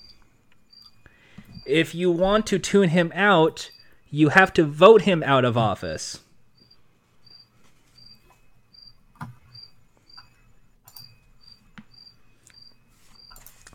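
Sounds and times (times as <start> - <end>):
crickets chirping outside a window at night: 0.0 - 2.2, 2.8 - 4.1, 6.6 - 13.5
speech: 1.6 - 6.2.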